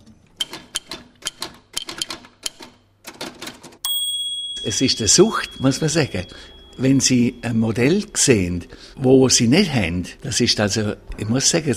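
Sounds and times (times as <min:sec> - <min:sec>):
antique mechanical typewriter keystrokes: 0:00.4 - 0:03.8
bright metallic ding of an antique typewriter: 0:03.8 - 0:07.6
speech: 0:04.6 - 0:11.7.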